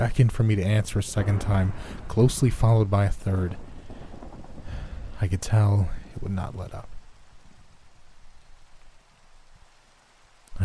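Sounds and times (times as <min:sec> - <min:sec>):
speech: 0:00.0 - 0:03.7, 0:05.2 - 0:06.9
steady rain falling: 0:00.0 - 0:10.6
low thumps: 0:00.9 - 0:08.3.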